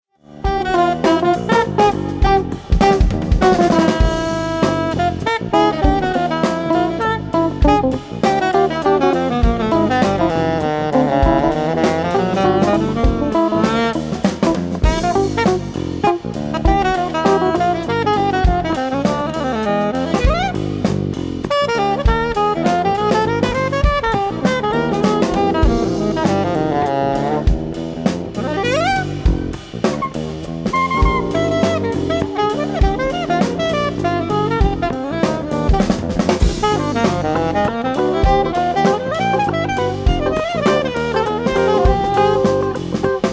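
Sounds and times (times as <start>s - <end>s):
Eb half curved alto soprano saxophone: 0.2s - 43.3s.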